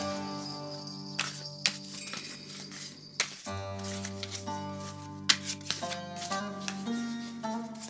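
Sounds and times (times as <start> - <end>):
sustained music: 0.0 - 7.8
tarot cards being shuffled by hand: 1.2 - 7.8.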